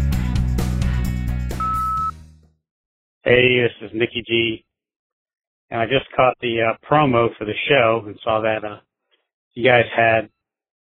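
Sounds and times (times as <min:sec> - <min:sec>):
rhythmic music with drum hits: 0:00.0 - 0:02.1
voicemail beep: 0:01.6 - 0:02.1
speech: 0:03.3 - 0:04.7, 0:05.7 - 0:08.9, 0:09.6 - 0:10.4.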